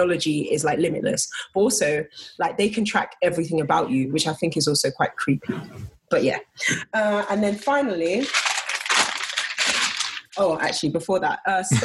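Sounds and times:
speech: 0:00.0 - 0:08.5, 0:10.4 - 0:11.8
sheets of paper being shuffled and rustled: 0:07.4 - 0:10.5.

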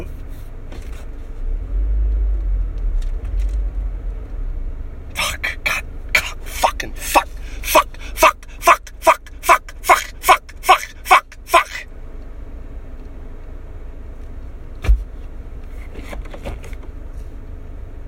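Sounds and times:
car engine rumble from passing road traffic: 0:00.0 - 0:18.0
sharp rhythmic bursts: 0:05.2 - 0:11.8.

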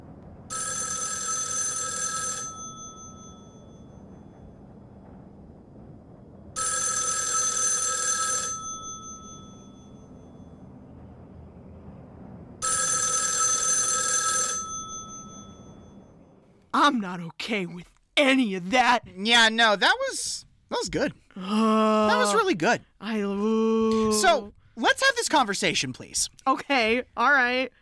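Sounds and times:
low hum: 0:00.0 - 0:27.7
telephone bell ringing: 0:00.5 - 0:04.0, 0:06.6 - 0:10.1, 0:12.6 - 0:16.0
speech: 0:16.8 - 0:27.7.

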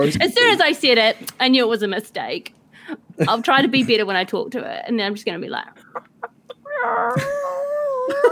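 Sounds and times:
speech: 0:00.0 - 0:06.1, 0:06.8 - 0:07.4
person imitating a chicken squawk: 0:06.2 - 0:08.3.

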